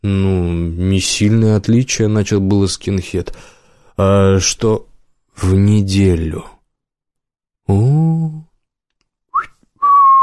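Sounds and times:
speech: 0:00.0 - 0:06.6, 0:07.7 - 0:08.5
man whistling in surprise: 0:09.3 - 0:10.2.

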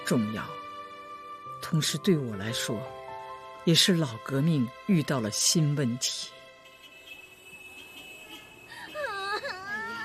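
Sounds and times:
speech: 0:00.1 - 0:00.6, 0:01.6 - 0:03.0, 0:03.6 - 0:06.4
child crying: 0:09.0 - 0:10.0.

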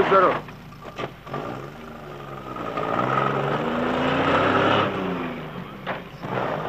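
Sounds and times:
tractor engines droning in a harvested wheat field: 0:00.0 - 0:06.6.

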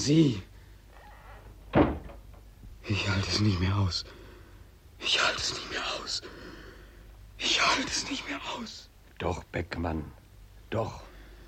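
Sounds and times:
speech: 0:00.0 - 0:00.5, 0:02.9 - 0:04.2, 0:05.0 - 0:06.4, 0:07.4 - 0:11.1
door shut quickly in a radio drama: 0:01.3 - 0:02.4.

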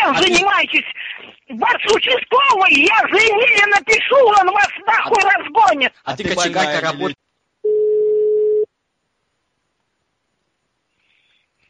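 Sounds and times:
speech: 0:00.1 - 0:07.2
steady mid-pitched telephone line tone after the other party hangs up: 0:07.6 - 0:08.7.

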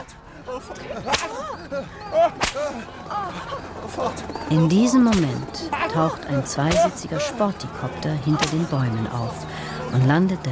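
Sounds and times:
laughter: 0:00.0 - 0:10.5
overlapping raised voices: 0:00.0 - 0:10.5
speech: 0:00.5 - 0:10.5
whip cracks: 0:01.1 - 0:01.4, 0:02.4 - 0:02.8, 0:06.7 - 0:07.0.

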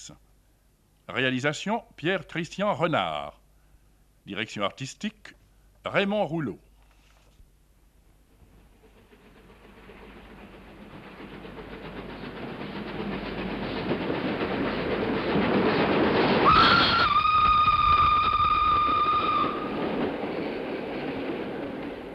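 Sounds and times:
speech: 0:00.0 - 0:00.2, 0:01.1 - 0:03.4, 0:04.2 - 0:06.6
train rumbling and rattling through a provincial railway station: 0:08.1 - 0:22.1
train whistle: 0:16.4 - 0:19.8.

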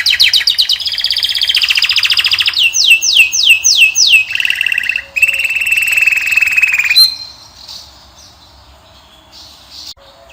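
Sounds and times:
male Belgian canary singing training song: 0:00.0 - 0:10.3.

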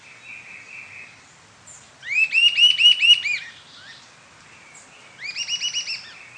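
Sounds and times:
sibilant sirystes Sirystes sibilator sibilator giving slurred whistled notes: 0:02.0 - 0:03.5, 0:05.2 - 0:06.3.

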